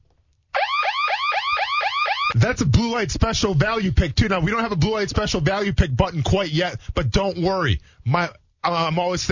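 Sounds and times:
electronic alarm sound effect with rising and falling whoop: 0:00.6 - 0:02.4
speech: 0:02.5 - 0:09.3.

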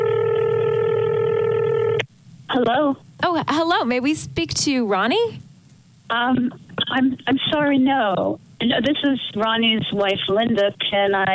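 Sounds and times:
telephone line tone as a call is placed: 0:00.0 - 0:02.0
speech: 0:02.6 - 0:05.4, 0:06.1 - 0:11.3.

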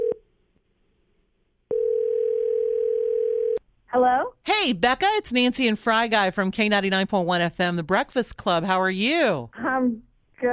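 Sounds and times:
outgoing phone call ringback tone: 0:00.0 - 0:00.2, 0:01.7 - 0:03.6
speech: 0:03.9 - 0:10.5.

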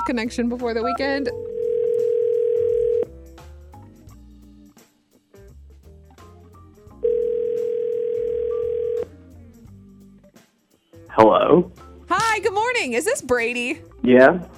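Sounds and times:
speech: 0:00.0 - 0:01.5, 0:11.2 - 0:11.8, 0:12.4 - 0:14.5
electronic phone line ringback tones: 0:00.8 - 0:03.1, 0:07.0 - 0:09.2.

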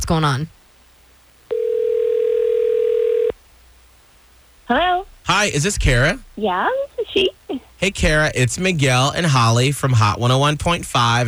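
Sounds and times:
faint hiss: 0:00.0 - 0:11.2
speech: 0:00.1 - 0:00.6, 0:04.7 - 0:11.2
steady telephone ringback or dial tone: 0:01.5 - 0:03.4.

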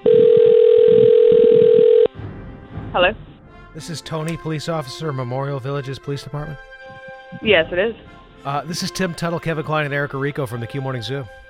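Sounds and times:
telephone ringback tone on an outgoing call: 0:00.0 - 0:02.1
speech: 0:03.0 - 0:03.2, 0:03.8 - 0:06.7, 0:07.4 - 0:11.4.

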